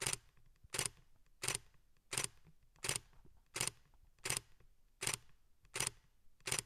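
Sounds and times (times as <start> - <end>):
Nikon Z 6 camera: 0.8 - 5.2, 5.8 - 6.6.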